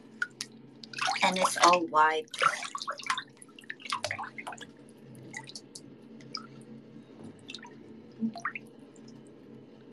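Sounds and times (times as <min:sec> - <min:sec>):
water splashing and dripping while washing dishes: 0:00.2 - 0:06.5
speech: 0:01.2 - 0:03.0.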